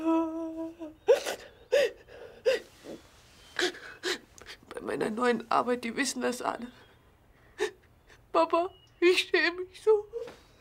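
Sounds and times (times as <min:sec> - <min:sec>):
woman sobbing and gasping: 0:00.0 - 0:03.0, 0:03.6 - 0:04.7, 0:07.4 - 0:08.3
speech: 0:05.2 - 0:06.8, 0:08.4 - 0:10.1.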